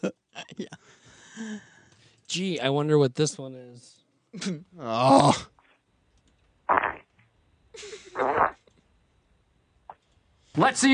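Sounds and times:
speech: 0:02.3 - 0:05.5, 0:10.6 - 0:10.9
loud farts, short sharp and wet sputtering: 0:06.7 - 0:07.1, 0:08.2 - 0:08.7.

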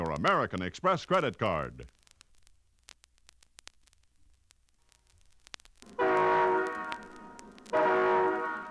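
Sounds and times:
faint crackle and clicks: 0:00.0 - 0:08.6
speech: 0:00.2 - 0:02.0
Great Northern passenger train horn blasts: 0:05.9 - 0:08.6.

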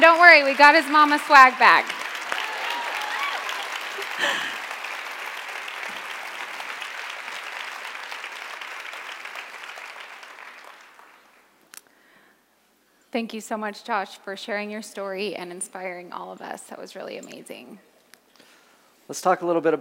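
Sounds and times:
speech: 0:00.0 - 0:02.0, 0:04.2 - 0:04.6, 0:13.1 - 0:17.9, 0:19.1 - 0:19.8
crowd applause: 0:00.0 - 0:11.5.

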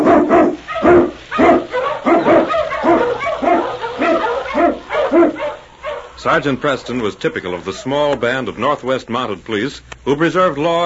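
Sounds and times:
pack of huskies barking and yipping: 0:00.0 - 0:08.2
speech: 0:06.2 - 0:10.8.

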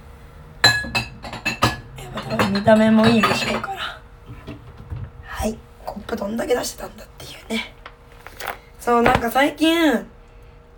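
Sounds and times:
dishes clinking while being put away: 0:00.6 - 0:05.1
speech: 0:02.3 - 0:03.8, 0:05.4 - 0:07.8, 0:08.8 - 0:10.1.

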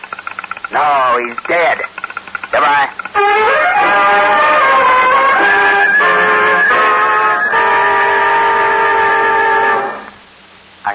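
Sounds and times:
speech: 0:00.7 - 0:04.4
oncoming train horn: 0:05.4 - 0:10.1.

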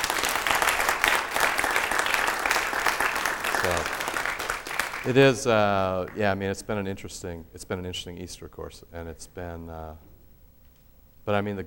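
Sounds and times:
audience applause in church: 0:00.0 - 0:06.2
speech: 0:05.0 - 0:10.1, 0:11.2 - 0:11.6.

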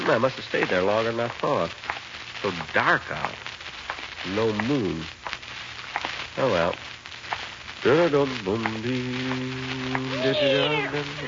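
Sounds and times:
hiss: 0:00.0 - 0:11.2
speech: 0:00.1 - 0:03.5, 0:04.2 - 0:05.2, 0:06.4 - 0:06.9, 0:07.8 - 0:11.2
cat meowing: 0:10.2 - 0:11.2.

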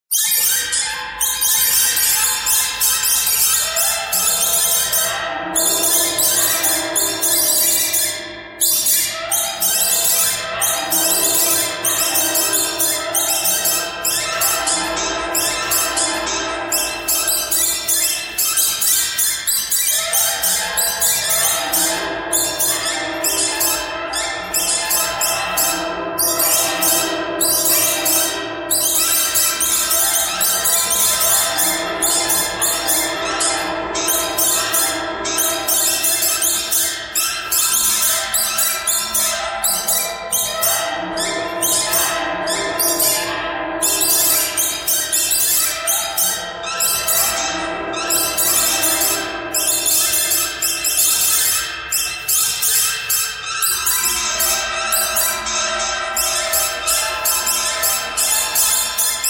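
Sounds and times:
birds chirping in a pentatonic pattern: 0:00.4 - 0:59.2.

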